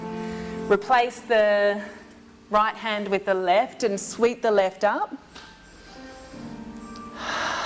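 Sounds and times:
speech: 0:00.7 - 0:05.5
slow ujjayi breath exhale during a yoga twist: 0:07.1 - 0:07.6.

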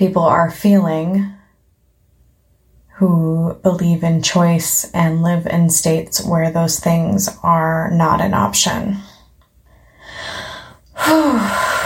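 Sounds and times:
speech: 0:00.0 - 0:01.4, 0:03.0 - 0:09.1, 0:11.0 - 0:11.8
person taking a deep breath: 0:09.7 - 0:11.8.

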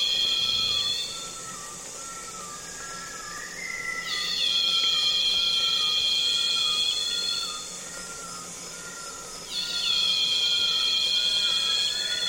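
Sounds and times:
cicadas calling in the Congo basin rainforest: 0:00.0 - 0:12.2
fainter insects humming in the Congo basin rainforest: 0:00.0 - 0:12.2.

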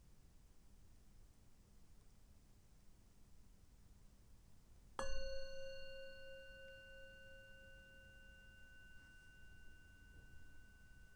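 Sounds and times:
meditation bell ringing: 0:05.0 - 0:11.1.

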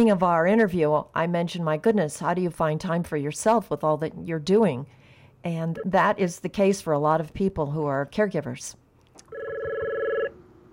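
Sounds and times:
speech: 0:00.0 - 0:08.8
electronic phone ring tone: 0:09.3 - 0:10.4.

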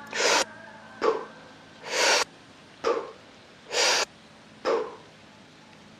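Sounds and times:
forceful recovery breathing after a breath-hold dive: 0:00.1 - 0:00.4, 0:01.8 - 0:02.3, 0:03.7 - 0:04.1.

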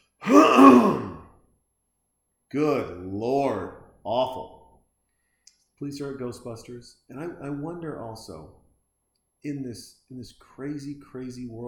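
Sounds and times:
person clearing throat: 0:00.2 - 0:01.3
speech: 0:02.5 - 0:04.6, 0:05.8 - 0:08.6, 0:09.4 - 0:11.6.

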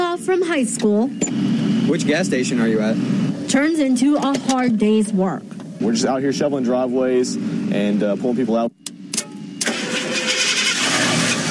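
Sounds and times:
truck engine cranking and starting: 0:00.0 - 0:04.6, 0:08.8 - 0:11.4
speech: 0:00.3 - 0:08.9.

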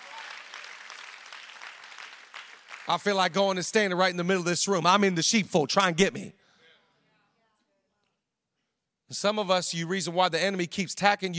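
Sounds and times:
church congregation clapping: 0:00.0 - 0:04.1
speech: 0:02.9 - 0:06.4, 0:09.1 - 0:11.3.

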